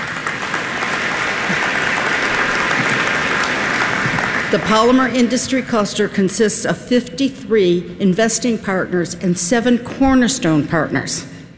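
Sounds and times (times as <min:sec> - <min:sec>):
crowd applauding: 0:00.0 - 0:05.0
speech: 0:04.5 - 0:11.3.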